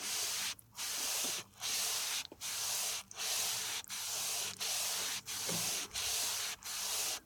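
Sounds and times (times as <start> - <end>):
sponge foley: 0.0 - 7.2.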